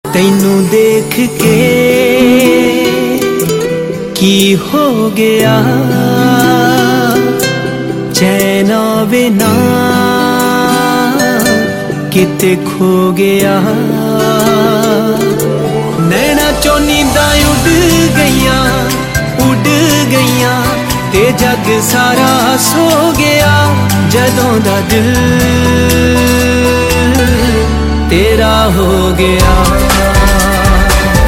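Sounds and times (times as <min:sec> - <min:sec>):
Punjabi sad ringtone melody: 0:00.1 - 0:31.2.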